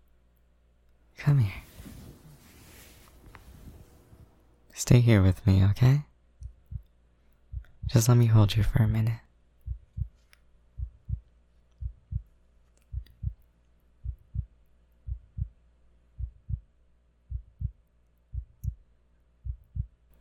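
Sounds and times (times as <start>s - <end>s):
faint hum: 0.0s - 20.2s
speech: 1.2s - 1.7s, 4.8s - 6.1s, 7.9s - 9.2s
heartbeat: 6.4s - 6.9s, 7.5s - 8.1s, 9.6s - 10.2s, 10.8s - 12.3s, 12.9s - 13.4s, 14.0s - 15.6s, 16.2s - 16.7s, 17.3s - 18.8s, 19.4s - 20.0s.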